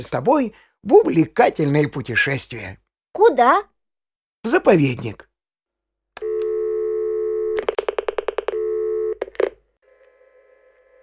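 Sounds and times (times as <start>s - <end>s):
speech: 0.0s - 3.7s, 4.4s - 5.3s
telephone line tone as a call is placed: 6.2s - 9.3s.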